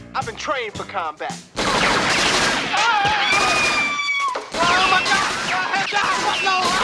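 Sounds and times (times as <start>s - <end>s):
speech: 0.2s - 3.7s
sustained volley of gunshots: 1.6s - 6.8s.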